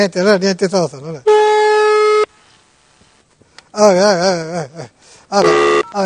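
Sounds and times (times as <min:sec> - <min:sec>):
speech: 0:00.0 - 0:01.4, 0:03.7 - 0:06.0
telephone busy tone: 0:05.4 - 0:06.0.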